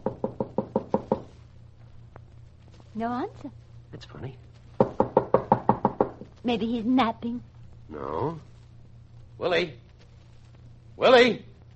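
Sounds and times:
knocking on a door: 0:00.0 - 0:01.4, 0:04.8 - 0:06.4
speech: 0:03.0 - 0:04.5, 0:06.4 - 0:08.5, 0:09.4 - 0:09.8, 0:11.0 - 0:11.5.

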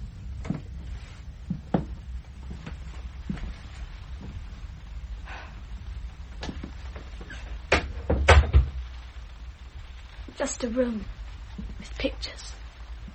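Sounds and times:
low rumble: 0:00.0 - 0:13.1
door creaks and thuds: 0:06.4 - 0:08.9
speech: 0:10.4 - 0:11.2, 0:11.8 - 0:12.6.

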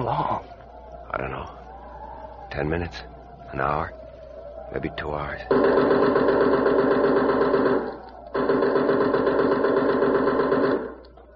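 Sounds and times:
speech: 0:01.2 - 0:01.6, 0:02.5 - 0:04.0, 0:04.7 - 0:07.2
machine gun firing in rapid bursts: 0:05.5 - 0:11.0.

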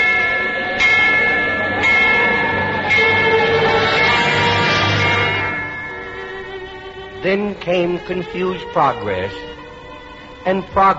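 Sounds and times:
warning bell ringing: 0:00.0 - 0:08.8
speech: 0:07.3 - 0:09.6, 0:10.4 - 0:10.9.

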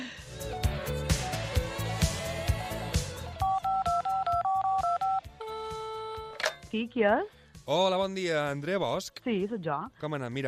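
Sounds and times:
rhythmic music: 0:00.0 - 0:06.0
crisp two-note electronic telephone dialing beeps: 0:03.4 - 0:06.5
speech: 0:06.7 - 0:10.4.

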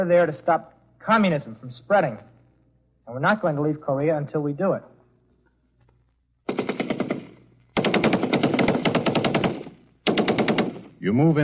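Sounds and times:
speech: 0:00.0 - 0:02.3, 0:03.1 - 0:04.9, 0:11.0 - 0:11.4
machine gun fire over a military infiltration course with barbed wire: 0:06.5 - 0:11.0.

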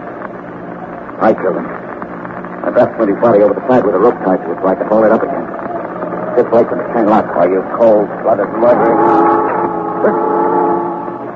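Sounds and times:
speech: 0:01.2 - 0:01.8, 0:02.6 - 0:05.6, 0:06.4 - 0:10.4
ship's foghorn blast: 0:08.4 - 0:11.3.

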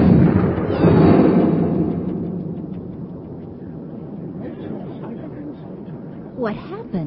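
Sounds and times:
warship cannons firing: 0:00.0 - 0:04.5
laughter: 0:04.2 - 0:06.2
speech: 0:06.4 - 0:07.0.

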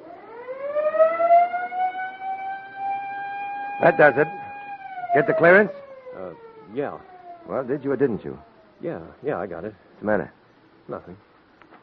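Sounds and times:
siren being tested, winding up into a wail: 0:00.0 - 0:09.1
speech: 0:03.8 - 0:04.4, 0:05.2 - 0:11.3.

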